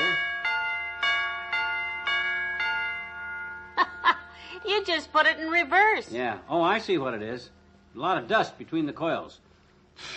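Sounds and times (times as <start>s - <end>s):
electric doorbell hammers striking tuned chime pipes: 0.0s - 3.8s
speech: 4.6s - 9.4s, 10.0s - 10.1s.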